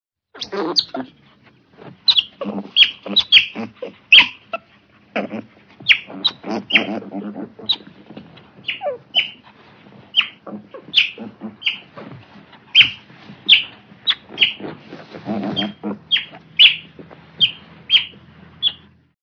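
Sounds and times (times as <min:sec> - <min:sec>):
otter squeaking: 0:00.4 - 0:19.1.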